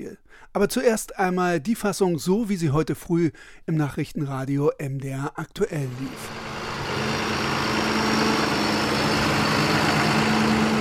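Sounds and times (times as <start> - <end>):
speech: 0.0 - 7.2
tractor engine droning while driving around a field in Saxony Germany: 5.9 - 10.7.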